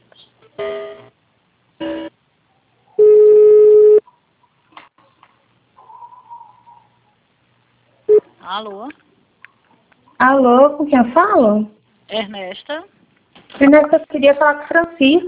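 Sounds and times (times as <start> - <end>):
phone line tones as a call is transferred: 3.0 - 4.0
speech: 8.5 - 9.0, 10.2 - 12.9, 13.6 - 15.2.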